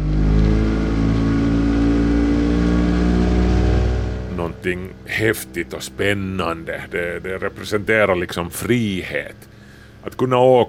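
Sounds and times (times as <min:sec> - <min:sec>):
outboard boat motor roaring: 0:00.0 - 0:08.5
speech: 0:04.6 - 0:10.6.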